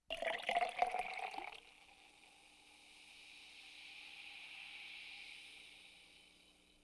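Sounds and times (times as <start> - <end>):
mineral water pouring into a glass at a table: 0.1 - 2.0.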